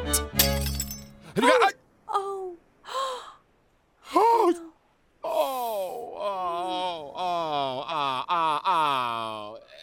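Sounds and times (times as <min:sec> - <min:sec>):
Baccarat crystal glass shattering: 0:00.0 - 0:01.2
person sighing: 0:02.2 - 0:03.4, 0:05.2 - 0:09.8
person letting out a long wavering wail of dismay: 0:05.2 - 0:09.8.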